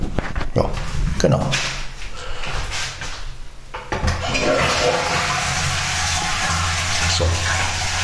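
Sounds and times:
speech: 0.6 - 1.8
toilet flushing: 4.0 - 8.0.

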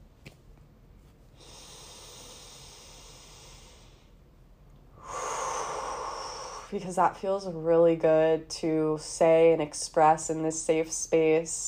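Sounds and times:
deep breath: 1.4 - 4.2, 4.9 - 6.8
speech: 6.7 - 11.6.

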